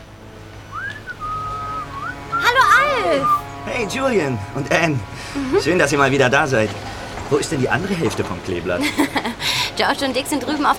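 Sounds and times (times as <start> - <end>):
person whistling a short cheerful tune: 0.8 - 2.5
speech: 3.1 - 10.7
laughter: 4.9 - 5.9, 7.6 - 9.8.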